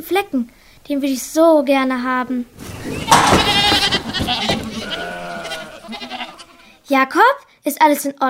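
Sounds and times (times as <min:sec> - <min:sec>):
speech: 0:00.0 - 0:03.6, 0:06.9 - 0:08.2
rustling and stall noises: 0:02.0 - 0:06.8
stubborn goat bleating in a goat stall: 0:02.8 - 0:06.8.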